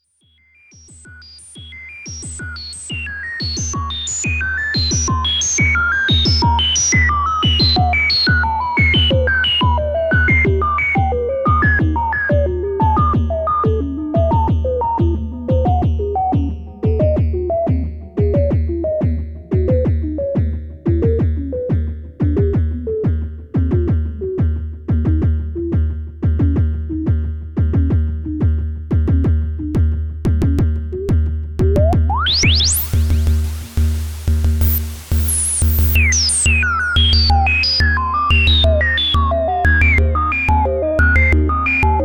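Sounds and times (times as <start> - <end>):
analog synthesizer kick drum: 0.8 - 42.0.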